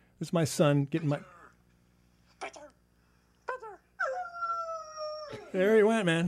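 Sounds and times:
speech: 0:00.2 - 0:01.4, 0:05.5 - 0:06.2
hound dog howling: 0:04.0 - 0:05.5.

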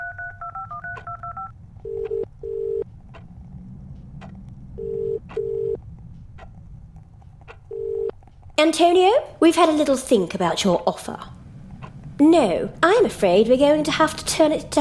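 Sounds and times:
touch-tone beeps dialing a number: 0:00.0 - 0:02.8, 0:04.8 - 0:05.8, 0:07.7 - 0:08.1
low rumble: 0:00.1 - 0:14.7
speech: 0:08.6 - 0:11.4, 0:12.2 - 0:14.7.

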